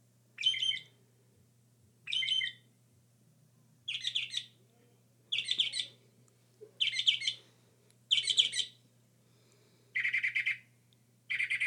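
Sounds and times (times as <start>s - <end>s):
Northern mockingbird delivering scratchy, rattling song phrases: 0.4s - 0.8s, 2.1s - 2.6s, 3.9s - 4.5s, 5.3s - 5.9s, 6.8s - 7.4s, 8.1s - 8.8s, 11.3s - 11.6s.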